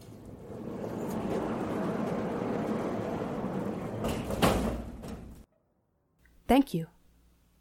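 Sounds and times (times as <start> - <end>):
heavy safe door sliding shut with a rumbling roll: 0.0 - 5.5
speech: 6.5 - 7.0.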